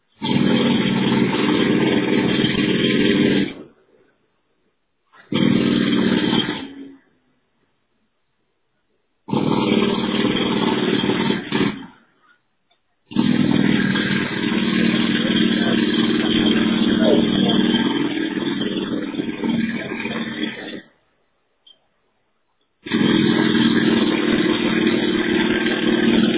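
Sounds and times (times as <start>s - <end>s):
jackhammer heard through voicemail: 0.1s - 3.7s, 5.2s - 7.0s, 9.3s - 12.1s, 13.1s - 21.0s, 22.8s - 26.3s.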